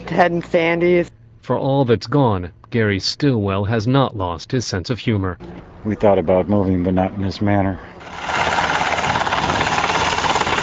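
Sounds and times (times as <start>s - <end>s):
speech: 0.1s - 8.4s
helicopter taking off with engine and rotor roaring: 8.0s - 10.6s.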